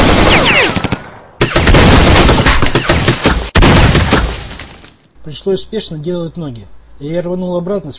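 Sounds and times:
heavy automatic machine-gun fire in a small room: 0.0 - 4.5
speech: 5.2 - 7.9.

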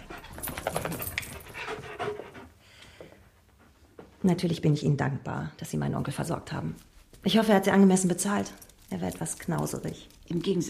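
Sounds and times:
dog panting on a sofa in a house: 0.0 - 4.2
speech: 4.2 - 10.6.

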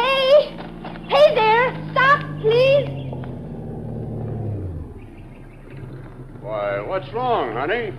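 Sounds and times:
car approaching on a road: 0.0 - 7.9
speech: 7.0 - 7.9.

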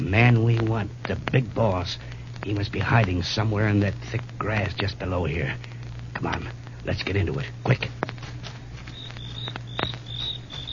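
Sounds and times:
speech: 0.1 - 8.1
crickets chirping in thick grass after dark: 8.2 - 10.7.

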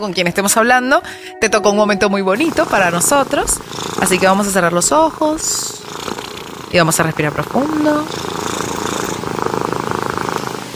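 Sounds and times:
speech: 0.0 - 8.5
cat purring: 2.4 - 10.7.

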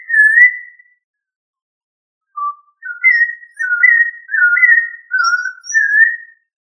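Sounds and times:
thrush of family Turdidae singing fluty whistles: 0.0 - 1.0, 2.3 - 6.6.

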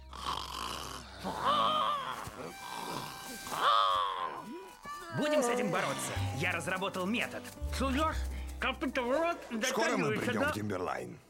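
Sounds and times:
rasping snore from a furry sleeper in an animated film: 0.0 - 3.6
speech: 1.2 - 1.5, 2.4 - 11.2.

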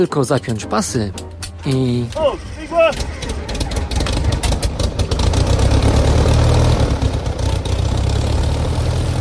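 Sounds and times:
speech: 0.0 - 3.2
engine of a small old wood-and-fabric propeller plane flying low: 2.3 - 9.1.

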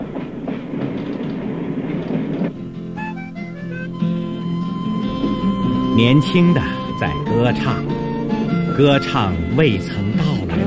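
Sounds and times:
international passenger train running on rails: 0.0 - 10.6
tonal notes: 2.6 - 10.6
speech: 6.0 - 8.0, 8.8 - 10.0.

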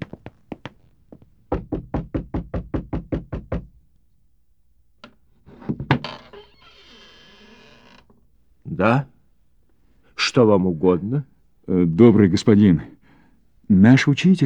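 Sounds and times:
knocking on the door of a large house: 1.5 - 3.8
speech: 8.8 - 9.1, 10.3 - 13.0, 13.7 - 14.4.

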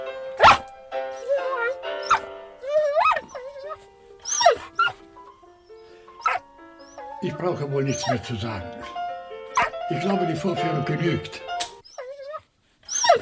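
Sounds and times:
three pianos playing together: 0.0 - 11.8
dog howling and whining at piano music: 0.4 - 5.0, 5.6 - 7.1, 8.8 - 9.8, 11.8 - 13.2
speech: 7.2 - 9.0, 9.9 - 11.5.

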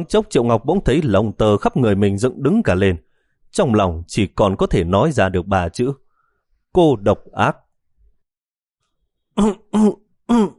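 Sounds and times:
speech: 0.0 - 6.0, 6.7 - 7.6, 9.4 - 10.5
man coughing hard while driving a car on a highway after smoking: 9.4 - 10.5.

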